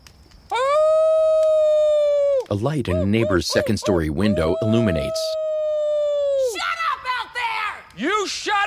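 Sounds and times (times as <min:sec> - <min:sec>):
person imitating a wolf howling at the moon: 0:00.5 - 0:06.5
speech: 0:02.5 - 0:05.4, 0:08.0 - 0:08.6.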